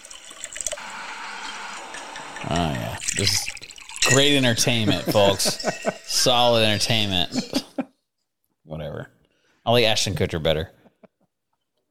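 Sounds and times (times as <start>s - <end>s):
bourbon splashing and pouring into a glass: 0.0s - 7.2s
speech: 2.5s - 7.8s, 9.7s - 10.8s
laughter: 4.6s - 8.0s, 10.6s - 11.3s.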